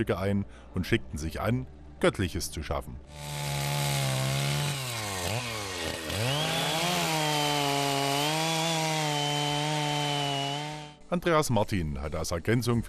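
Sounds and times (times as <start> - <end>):
speech: 0.0 - 3.6, 11.1 - 12.8
chainsaw engine revving and bogging down while cutting into wood: 3.1 - 11.0.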